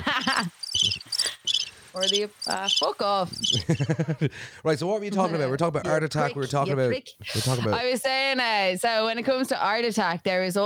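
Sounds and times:
laughter: 0.0s - 0.6s, 3.5s - 4.4s
cricket chirping in trilling bursts: 0.1s - 3.8s
speech: 2.0s - 10.6s.

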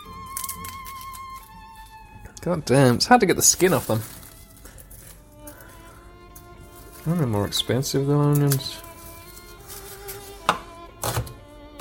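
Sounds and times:
speech: 2.4s - 4.2s, 7.1s - 8.9s
knife chopping shallots on a cutting board: 10.4s - 11.7s.

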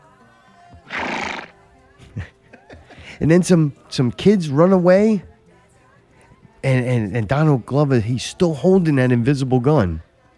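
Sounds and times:
horse snort or hoof thud: 0.8s - 1.5s
white horse whinnying: 0.8s - 1.6s
laughter: 1.9s - 3.2s
speech: 3.2s - 5.3s, 6.7s - 10.1s.

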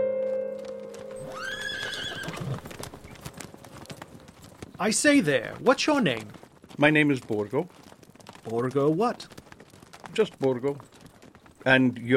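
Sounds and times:
horse-drawn carriage with clip-clopping hooves on a night ride: 0.2s - 12.1s
loud shrill horse neigh: 1.2s - 3.1s
speech: 4.8s - 7.8s, 8.5s - 9.3s, 10.2s - 10.9s, 11.7s - 12.1s.

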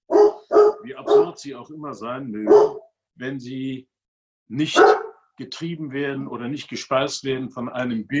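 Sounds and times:
dog barking: 0.1s - 1.4s, 2.4s - 2.9s, 4.7s - 5.2s
speech: 0.8s - 3.9s, 4.5s - 8.1s.

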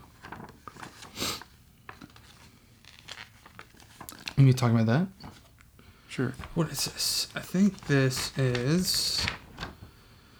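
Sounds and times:
paper receipts being handled and crinkled: 0.0s - 10.1s
speech: 4.4s - 5.2s, 6.2s - 9.4s.

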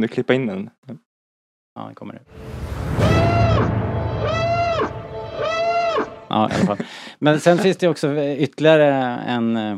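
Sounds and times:
speech: 0.0s - 1.0s, 1.8s - 3.1s, 6.3s - 9.7s
deep rumble: 2.3s - 6.4s
cinematic siren from a film trailer wailing: 2.4s - 6.4s.

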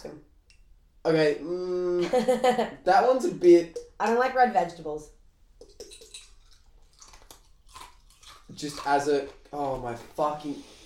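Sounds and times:
speech: 1.0s - 5.2s, 8.5s - 10.8s
wet crunchy chewing with the mouth open: 5.7s - 10.1s.

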